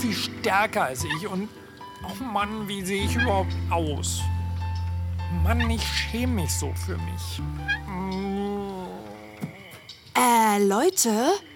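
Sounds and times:
speech: 0.0s - 4.3s, 5.3s - 8.8s, 10.2s - 11.5s
person whimpering in bushes: 7.9s - 9.3s.

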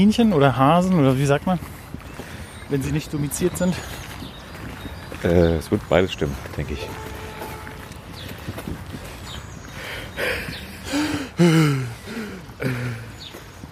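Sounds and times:
speech: 0.0s - 1.8s, 2.7s - 4.0s, 5.2s - 7.1s, 11.4s - 12.0s
heavy, wheezing raspy breaths with groaning edge: 9.0s - 13.3s.

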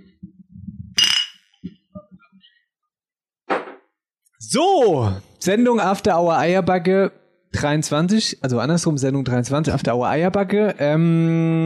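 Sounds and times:
glasses clinking in a toast: 1.0s - 1.5s
speech: 4.4s - 11.6s.

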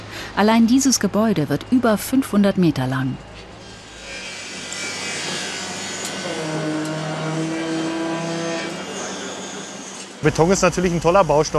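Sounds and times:
droning engine tones at a large construction site in Berlin: 0.0s - 11.5s
whining motors at a large construction site in Berlin: 0.0s - 11.5s
speech: 0.4s - 3.3s, 10.2s - 11.5s
faint sawing at a construction site: 3.5s - 11.5s.

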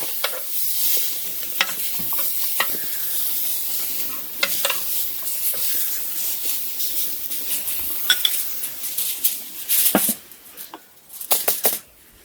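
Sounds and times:
meat sizzling as it fries in a pan: 0.0s - 9.6s
utensils clinking and scraping against a pan: 0.0s - 11.8s.

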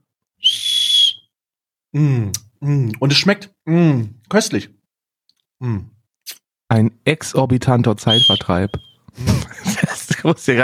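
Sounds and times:
shrill whistle note from a whistle lollipop being blown: 0.4s - 1.3s, 8.1s - 9.0s
speech: 1.9s - 4.8s, 5.6s - 10.6s
laughter: 9.2s - 10.6s.

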